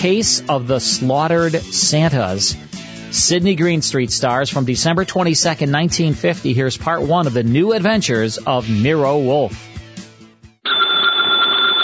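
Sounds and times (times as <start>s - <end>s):
speech: 0.0s - 9.8s
telephone bell ringing: 10.6s - 11.8s.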